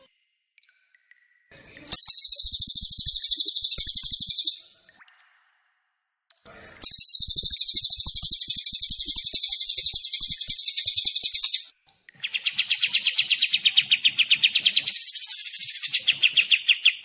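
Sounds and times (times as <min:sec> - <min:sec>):
songbird giving a slightly lower chattering series: 0:01.8 - 0:04.8, 0:06.8 - 0:17.0.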